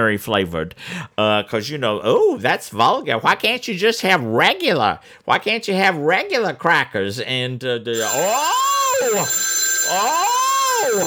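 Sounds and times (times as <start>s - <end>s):
speech: 0.0s - 11.0s
telephone ringing with a warbling electronic tone: 7.9s - 11.0s
thin steady high whine: 8.0s - 11.0s.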